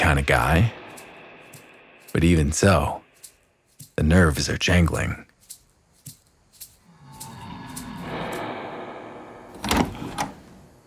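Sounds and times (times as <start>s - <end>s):
speech: 0.1s - 0.8s, 2.1s - 3.0s, 4.0s - 5.2s
door opening with latch clicks and knocks: 9.5s - 10.8s.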